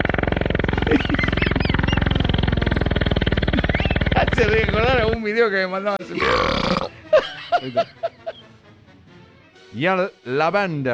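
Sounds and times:
laughter: 0.6 - 4.8, 6.0 - 8.8
speech: 4.4 - 8.1, 9.7 - 10.9
man burping: 6.1 - 7.0.

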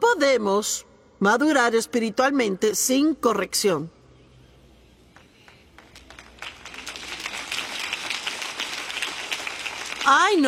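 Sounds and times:
speech: 0.2 - 4.0, 10.1 - 10.4
thin scattered applause from an audience: 5.4 - 10.4.

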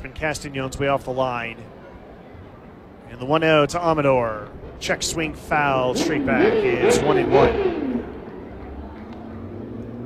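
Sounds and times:
city traffic engine rumble in downtown El Paso: 0.0 - 10.0
speech: 0.2 - 1.8, 3.1 - 7.8
cars and motorcycles revving: 4.5 - 10.0.

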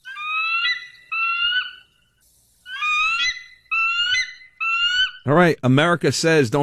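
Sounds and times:
eagle screech sound effect: 0.0 - 2.0, 2.6 - 5.3
speech: 5.2 - 6.6.

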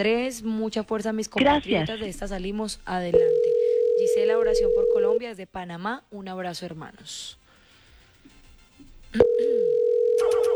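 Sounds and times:
speech: 0.0 - 7.4
telephone line tone on an unanswered call: 3.2 - 5.2, 9.2 - 10.5.

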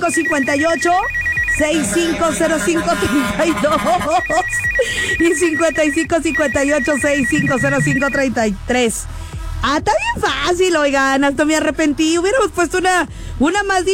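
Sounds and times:
speech: 0.0 - 13.9
telephone ringing tone: 0.3 - 5.9, 6.8 - 8.2.

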